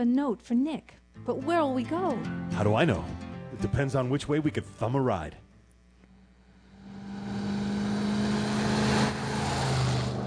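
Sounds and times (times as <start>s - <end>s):
speech: 0.0s - 5.4s
car whizzing by on a road: 6.7s - 10.2s.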